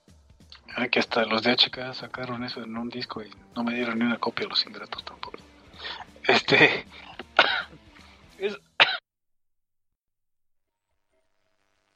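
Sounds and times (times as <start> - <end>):
speech: 0.8 - 7.1, 8.4 - 8.6
person coughing: 7.0 - 7.8, 8.4 - 9.0
person clearing throat: 7.0 - 9.0.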